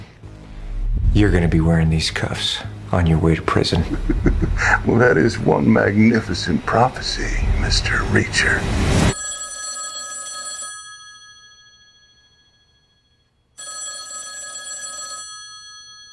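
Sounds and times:
speech: 1.2 - 9.1
laughter: 3.7 - 5.4
telephone bell ringing in buzzing bursts: 9.1 - 16.1.

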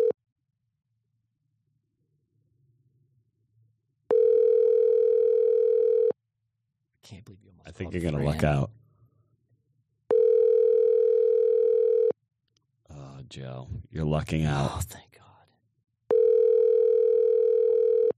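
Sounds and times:
phone ringback tone during outgoing call: 4.1 - 6.1, 10.1 - 12.1, 16.1 - 18.1
speech: 7.1 - 8.8, 13.3 - 15.3.

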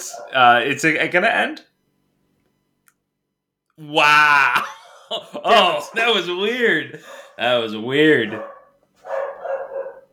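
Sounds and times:
dog barking: 0.0 - 0.4, 7.0 - 7.4, 8.2 - 10.1
speech: 0.0 - 1.7, 3.8 - 9.2
laughter: 3.9 - 6.3.

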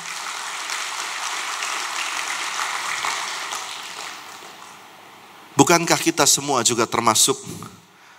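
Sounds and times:
audience applauding: 0.0 - 4.8
speech: 5.6 - 7.8.

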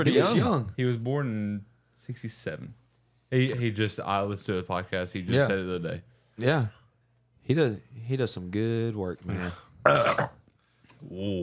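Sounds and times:
speech: 0.0 - 6.8, 7.5 - 10.4, 11.0 - 11.4
lower drawn-out guttural vocal sound: 9.4 - 10.4
loud wet gurgling burp: 9.8 - 10.4.

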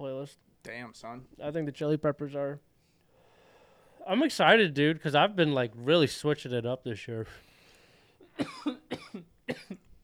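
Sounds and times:
speech: 0.2 - 2.7, 4.0 - 7.5, 8.4 - 9.8
sharp wet coughs: 8.2 - 9.9.

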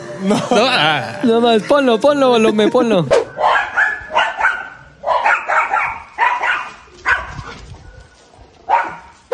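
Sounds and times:
laughter: 0.2 - 3.1
speech: 0.2 - 3.2
small dog barking in high-pitched bursts: 3.2 - 9.3.

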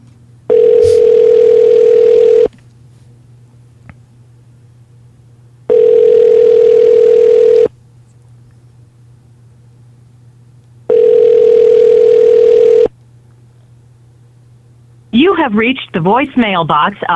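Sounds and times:
outgoing phone call ringback tone: 0.5 - 2.5, 5.7 - 7.7, 10.9 - 12.9
speech: 15.4 - 17.1.

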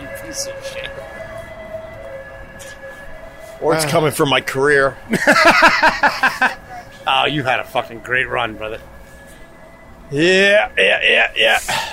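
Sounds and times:
ambulance siren: 0.0 - 11.9
speech: 0.3 - 1.2, 3.6 - 8.9, 10.1 - 11.9
laughter: 5.1 - 6.9.

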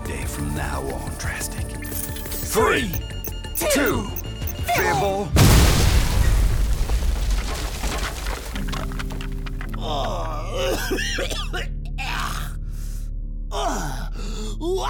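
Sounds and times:
speech: 0.1 - 1.8, 2.5 - 5.4, 9.9 - 11.7
explosion as a door is breached: 5.4 - 9.8
groaning and gasping vocal sounds: 11.9 - 14.8.

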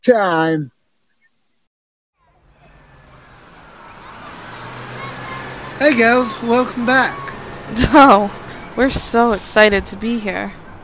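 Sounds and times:
speech: 0.0 - 0.8, 5.8 - 10.6
school bus engine rumbling: 2.2 - 10.8.

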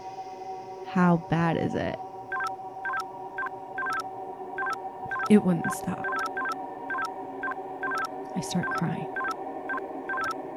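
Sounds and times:
speech: 0.9 - 2.1, 5.3 - 6.1, 8.4 - 9.2
steady electronic hum: 0.9 - 10.5
walkie-talkie short electronic beeps: 3.8 - 4.0, 4.6 - 5.3, 6.0 - 9.4, 10.1 - 10.4.

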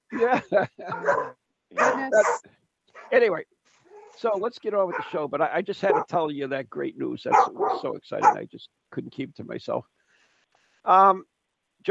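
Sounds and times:
laughter: 0.1 - 1.2
speech: 0.2 - 3.6, 4.2 - 10.0, 10.8 - 11.9
dog barking excitedly: 0.9 - 3.2, 4.9 - 5.2, 5.9 - 6.1, 7.3 - 8.4.

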